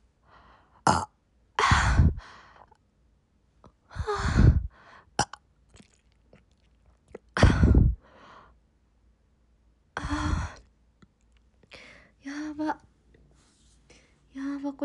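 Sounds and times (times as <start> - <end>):
person exhaling and sighing after drinking water: 1.6 - 2.4, 3.9 - 5.1, 7.3 - 8.5, 10.0 - 10.7.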